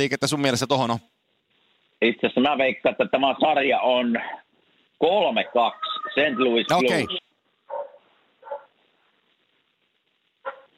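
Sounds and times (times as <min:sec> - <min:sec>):
speech: 0:00.0 - 0:01.1, 0:02.0 - 0:04.4, 0:05.0 - 0:07.2
dog barking: 0:07.7 - 0:08.8, 0:10.4 - 0:10.7.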